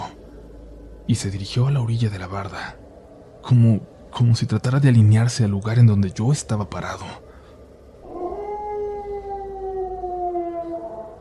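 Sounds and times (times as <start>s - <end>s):
speech: 1.1s - 2.8s, 3.4s - 7.2s
dog howling at night: 8.0s - 11.2s.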